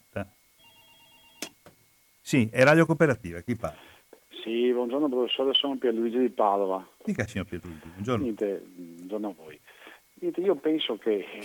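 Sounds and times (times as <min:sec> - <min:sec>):
speech: 0:00.2 - 0:00.4, 0:02.3 - 0:11.4
telephone ringing with electronic tone: 0:00.6 - 0:01.5.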